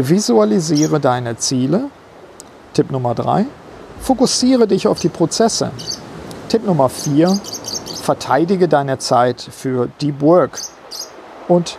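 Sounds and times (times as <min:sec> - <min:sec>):
speech: 0:00.0 - 0:02.0, 0:02.8 - 0:10.8, 0:11.5 - 0:11.7
canary chirping in quick high-pitched bursts: 0:00.7 - 0:01.0, 0:05.0 - 0:06.1, 0:07.0 - 0:08.2, 0:10.6 - 0:11.2.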